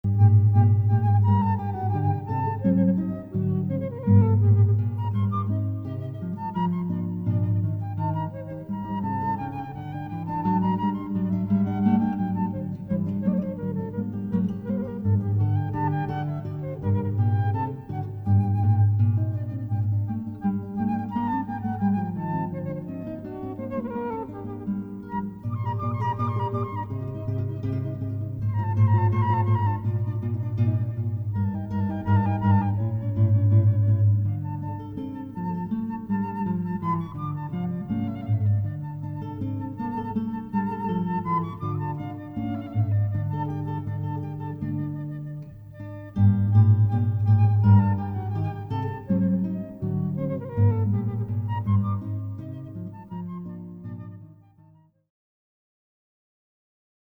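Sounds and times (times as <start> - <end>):
guitar: 0.0 - 54.8
flute: 0.0 - 55.1.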